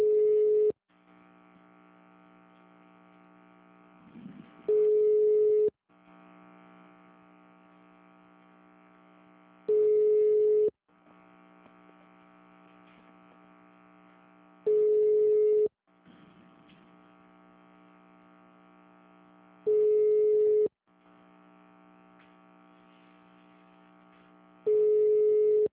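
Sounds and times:
telephone line tone bursts on a call to a bank branch: 0.0s - 0.7s, 4.7s - 5.7s, 9.7s - 10.7s, 14.7s - 15.7s, 19.7s - 20.7s, 24.7s - 25.7s
buzzing harmonic-rich telephone line hum: 0.0s - 25.7s.

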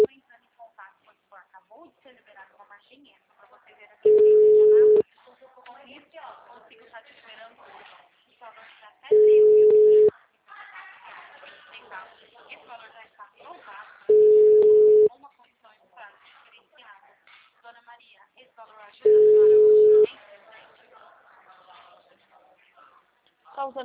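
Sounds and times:
people talking quietly: 0.0s - 23.8s
telephone ringback tone while a call is dialed: 4.1s - 5.0s, 9.1s - 10.1s, 14.1s - 15.1s, 19.1s - 20.1s.

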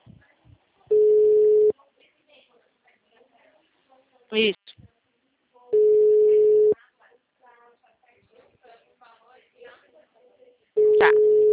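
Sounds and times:
telephone call tone while placing a call: 0.9s - 1.7s, 5.8s - 6.8s, 10.8s - 11.5s
speech: 4.3s - 4.6s.

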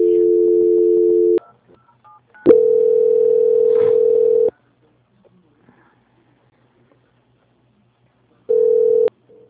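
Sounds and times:
telephone line tones while a call is being transferred: 0.0s - 1.4s, 2.4s - 4.5s, 8.5s - 9.1s.

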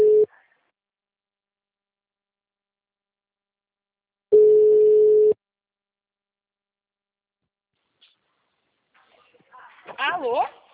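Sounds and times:
telephone line tone while a call is being placed: 0.0s - 0.3s, 4.3s - 5.4s.

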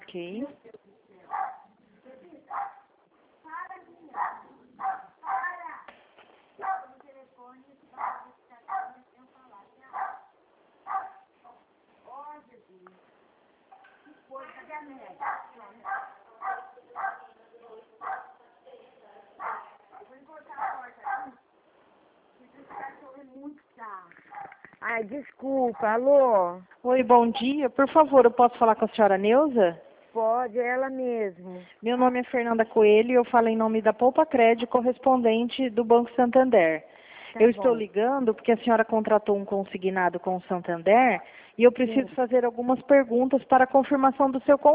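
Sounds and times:
speech: 0.1s - 0.9s, 22.7s - 44.7s
dog barking with higher yips: 1.3s - 1.8s, 2.5s - 2.9s, 4.1s - 5.7s, 6.6s - 7.0s, 8.0s - 9.1s, 9.9s - 11.6s, 15.2s - 17.4s, 18.0s - 18.4s, 19.4s - 21.4s, 22.6s - 23.0s, 24.2s - 24.6s, 25.7s - 26.0s.

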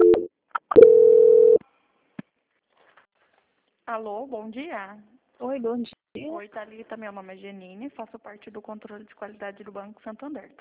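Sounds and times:
short low telephone line beep during a call transfer: 0.0s - 1.6s
speech: 3.9s - 10.5s.

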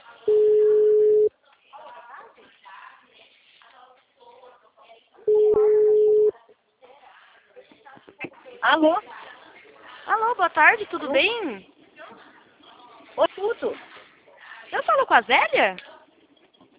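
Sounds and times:
telephone ringback tone as a call is placed: 0.3s - 1.3s, 5.3s - 6.3s
speech: 8.7s - 9.1s, 10.4s - 11.7s, 13.4s - 13.9s, 14.8s - 15.9s.

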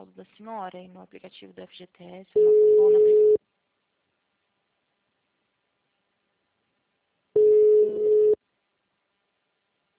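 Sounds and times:
speech: 0.1s - 3.5s
telephone busy tone after a dropped call: 2.4s - 3.4s, 7.4s - 8.4s.

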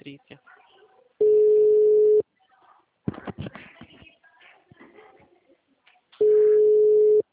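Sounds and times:
telephone ringback tones of an unanswered outgoing call: 1.2s - 2.2s, 6.2s - 7.2s.

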